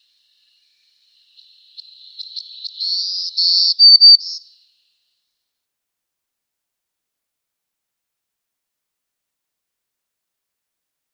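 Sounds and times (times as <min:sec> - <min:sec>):
Black-throated Green Warbler song with thin high buzzy notes: 0:00.0 - 0:05.0.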